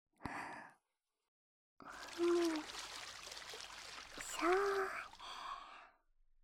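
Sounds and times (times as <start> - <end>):
hot water poured into a wooden washtub to wet hair: 1.8 - 5.7.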